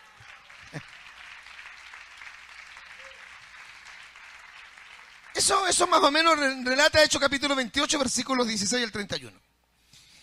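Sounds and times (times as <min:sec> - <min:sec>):
church audience applause: 0:00.0 - 0:06.4
speech: 0:05.4 - 0:09.4.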